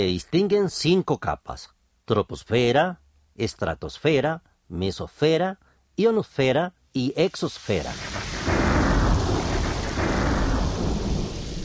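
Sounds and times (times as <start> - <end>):
speech: 0.0 - 8.2
steady hissing rain: 7.0 - 11.6
deep heavy rumble of thunder: 7.8 - 11.6.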